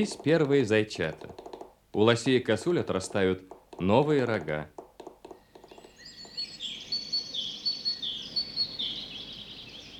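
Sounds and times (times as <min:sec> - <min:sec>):
speech: 0:00.0 - 0:01.4, 0:02.0 - 0:04.8
siskins, tits and kinglets singing in a forest in spring: 0:00.0 - 0:09.9.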